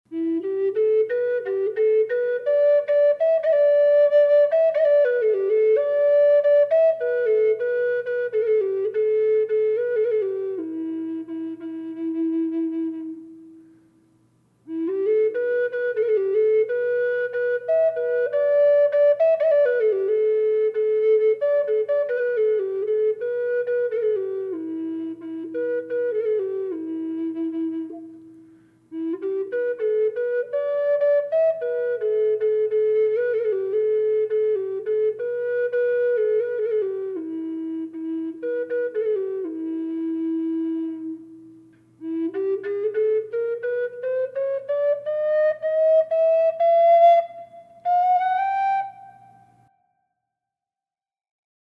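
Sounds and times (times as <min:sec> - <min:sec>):
granadillo wood Inuit flute with reverb: 0:00.1 - 0:13.7, 0:14.7 - 0:50.0.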